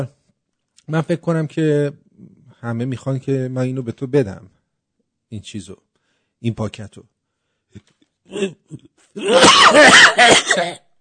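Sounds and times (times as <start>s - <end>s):
speech: 0.9s - 2.0s, 2.6s - 4.6s, 5.3s - 10.8s
person coughing during a comedy sketch: 8.3s - 10.9s.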